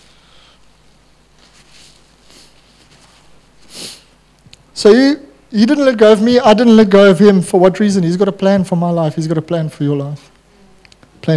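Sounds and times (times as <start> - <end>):
person sniffing into a microphone: 1.6 - 2.8, 3.6 - 4.2
speech: 4.8 - 10.3.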